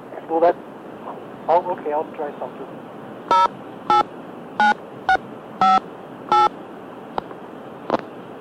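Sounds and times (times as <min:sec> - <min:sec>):
speech: 0:00.3 - 0:00.7, 0:01.5 - 0:03.7
telephone keypad dialing tones: 0:03.3 - 0:06.5.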